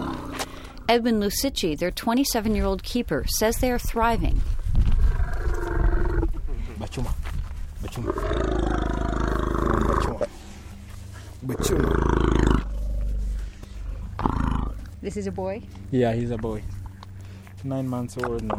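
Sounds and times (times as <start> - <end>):
young elephants roaring and rumbling in a dusty clearing in Kenya: 0.0 - 0.9, 4.9 - 6.5, 7.7 - 18.5
speech: 0.9 - 4.6, 6.9 - 7.2, 7.8 - 8.6, 15.0 - 16.8, 17.6 - 18.5.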